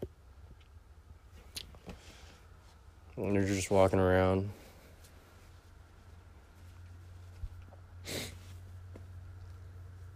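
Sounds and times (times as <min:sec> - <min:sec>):
steady low electrical hum: 0:00.0 - 0:10.1
speech: 0:03.2 - 0:04.6
single short forceful nose blow: 0:08.0 - 0:08.5.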